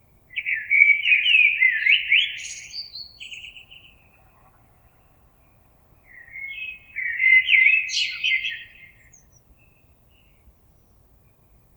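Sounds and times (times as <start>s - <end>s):
common blackbird singing: 0.3s - 4.3s, 6.0s - 11.0s.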